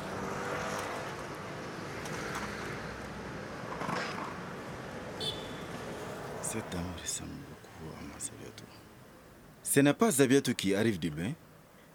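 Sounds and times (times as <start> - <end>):
cars passing: 0.0 - 9.0
street traffic: 0.0 - 11.9
speech: 6.5 - 8.9, 9.6 - 11.4.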